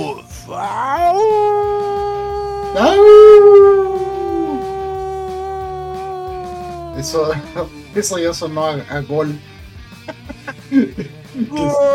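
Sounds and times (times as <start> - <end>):
faint rhythmic sound: 0.0 - 11.9
speech: 0.5 - 1.3, 7.0 - 9.6, 10.7 - 11.0
person imitating a wolf howl: 0.6 - 8.3, 11.4 - 11.9
laughter: 6.4 - 8.1, 9.9 - 11.9.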